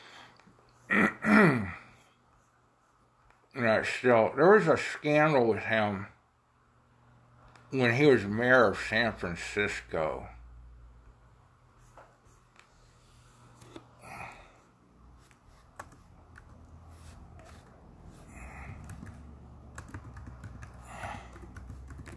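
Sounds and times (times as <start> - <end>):
speech: 3.8 - 6.2, 7.7 - 10.4
typing a search on a computer keyboard: 15.8 - 16.6, 18.6 - 22.1.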